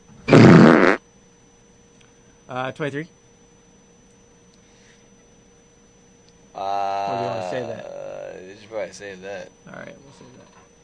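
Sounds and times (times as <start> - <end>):
fart: 0.2 - 1.0
speech: 2.5 - 3.2, 8.9 - 10.6.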